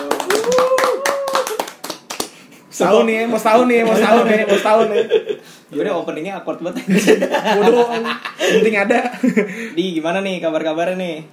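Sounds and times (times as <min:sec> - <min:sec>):
person calling or whooping: 0:00.0 - 0:01.7
hands clapping: 0:00.0 - 0:02.6
speech: 0:02.8 - 0:11.3
laughter: 0:03.9 - 0:05.4, 0:06.8 - 0:09.6.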